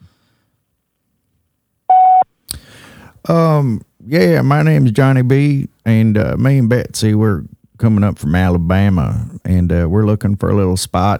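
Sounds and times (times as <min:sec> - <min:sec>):
voicemail beep: 0:01.9 - 0:02.2
speech: 0:03.2 - 0:11.1.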